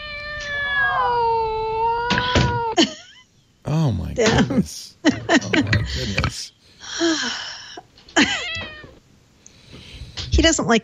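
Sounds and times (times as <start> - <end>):
cat meowing: 0.0 - 2.8, 8.3 - 9.0
laughter: 4.2 - 7.5
speech: 4.2 - 7.5, 10.4 - 10.8.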